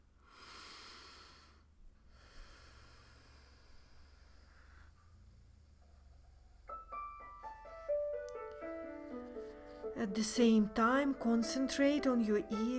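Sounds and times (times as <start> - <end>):
deep breathing through the nose: 0.1 - 6.0, 9.1 - 10.0
speech: 10.0 - 12.7.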